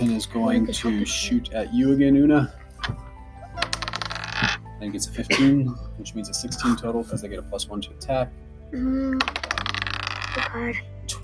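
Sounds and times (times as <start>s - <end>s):
speech: 0.2s - 3.0s, 4.8s - 9.5s, 10.4s - 11.2s
several dice rolling across a tabletop: 3.6s - 4.6s, 9.2s - 10.5s.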